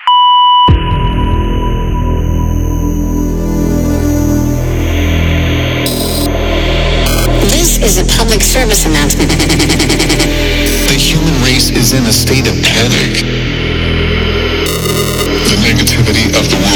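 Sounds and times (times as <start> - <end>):
answering machine electronic beep: 0.0 - 6.3, 7.0 - 7.6, 14.7 - 15.6
dense humming static-like noise: 3.2 - 16.7
speech: 11.9 - 13.3.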